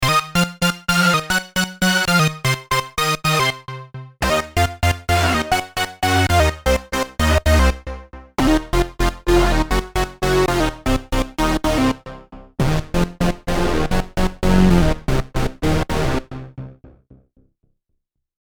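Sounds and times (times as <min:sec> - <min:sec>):
Prophet '08 synthesizer through TransEcho: 0:00.0 - 0:17.2.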